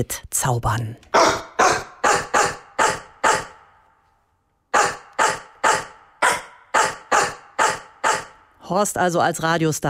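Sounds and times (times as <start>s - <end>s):
speech: 0.0s - 1.4s, 8.7s - 9.8s
bulldog barks edited into a song melody: 1.1s - 3.8s, 4.7s - 8.5s.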